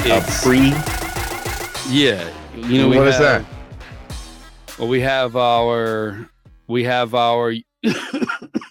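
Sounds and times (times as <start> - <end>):
speech: 0.1 - 0.9, 1.9 - 3.5, 4.8 - 8.2
person clearing throat: 7.9 - 8.6
person coughing: 7.9 - 8.6.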